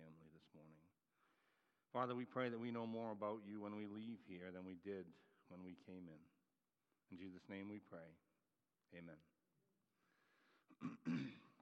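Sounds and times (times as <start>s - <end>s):
speech: 1.9s - 6.4s, 7.1s - 8.2s, 8.9s - 9.3s, 10.7s - 11.5s
person clearing throat during a church sermon: 10.7s - 11.6s.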